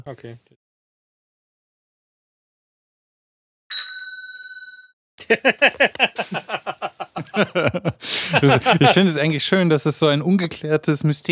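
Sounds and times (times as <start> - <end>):
speech: 0.0 - 0.6, 5.3 - 11.3
bicycle bell ringing with a sharp metallic strike: 3.7 - 4.9
laughter: 5.2 - 9.5.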